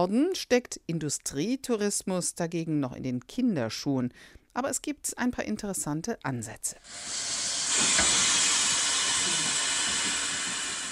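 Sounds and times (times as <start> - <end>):
speech: 0.0 - 7.6
historic steam locomotive hissing steam: 6.8 - 10.8
steam locomotive mechanical clanking: 7.4 - 10.8.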